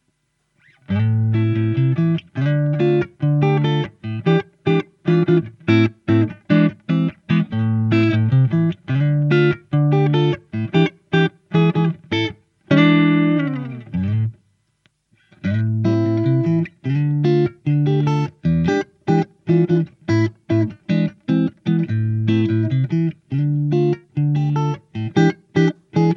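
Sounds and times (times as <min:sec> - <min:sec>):
1960s Stratocaster electric guitar playing a jazzy vamp: 0:00.9 - 0:14.4, 0:15.2 - 0:26.1.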